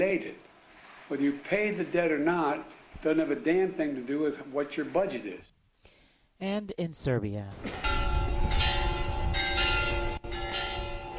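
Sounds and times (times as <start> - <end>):
speech: 0.0 - 0.5, 1.1 - 5.6, 6.4 - 7.9
church bells ringing: 7.8 - 11.1.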